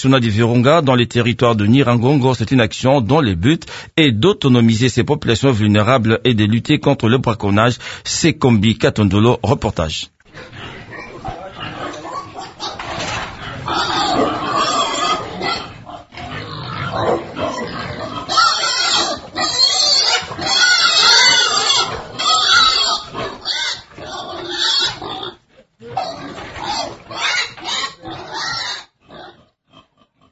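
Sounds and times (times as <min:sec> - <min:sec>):
speech: 0:00.0 - 0:10.7
pigs grunting and squealing: 0:10.2 - 0:30.3.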